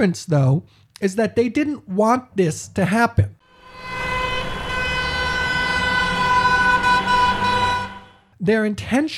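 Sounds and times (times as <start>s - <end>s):
speech: 0.0s - 3.9s, 8.4s - 9.1s
car horns blaring: 3.4s - 8.3s.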